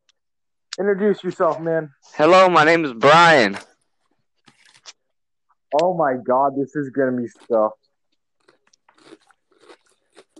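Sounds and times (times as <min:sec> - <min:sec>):
speech: 0:00.8 - 0:03.7, 0:05.7 - 0:07.8
munching and crunchy chewing: 0:07.3 - 0:10.3.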